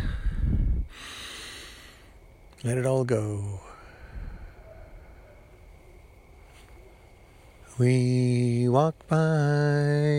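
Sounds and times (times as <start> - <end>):
deep breath in: 0.0 - 2.1, 3.7 - 5.4
speech: 2.6 - 3.7, 7.8 - 10.1.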